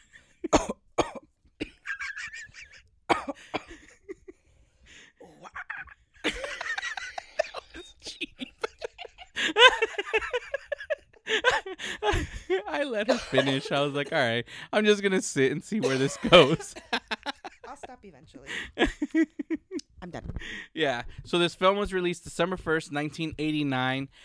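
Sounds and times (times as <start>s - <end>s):
person in a prolonged coughing fit: 0.5s - 1.9s, 3.1s - 4.0s, 7.4s - 9.0s, 13.1s - 14.2s, 15.8s - 16.9s
strained wheezy breaths: 3.4s - 5.3s, 9.3s - 9.7s, 11.2s - 12.5s, 14.4s - 14.8s, 18.4s - 18.8s, 20.4s - 21.3s
laughter: 5.4s - 19.8s
speech: 12.8s - 16.9s, 20.8s - 24.2s.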